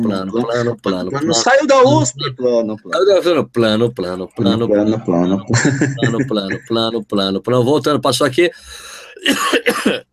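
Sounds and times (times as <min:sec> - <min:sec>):
laughter: 0:00.0 - 0:02.6, 0:04.4 - 0:07.1
speech: 0:00.0 - 0:10.1
rough throaty coughs: 0:09.0 - 0:10.1.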